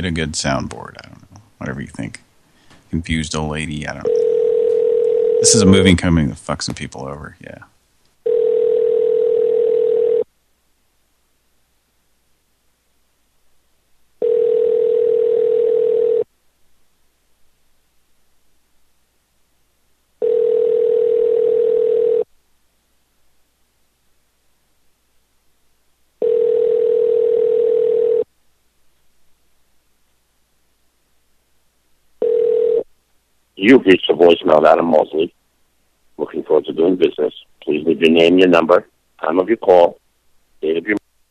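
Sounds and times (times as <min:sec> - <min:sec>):
speech: 0:00.0 - 0:02.2, 0:02.9 - 0:04.2, 0:05.4 - 0:07.7, 0:33.6 - 0:35.4, 0:36.2 - 0:40.0, 0:40.6 - 0:41.0
telephone ringback tone calling a business number: 0:04.0 - 0:05.7, 0:08.2 - 0:10.3, 0:14.2 - 0:16.3, 0:20.2 - 0:22.3, 0:26.2 - 0:28.3, 0:32.2 - 0:32.9.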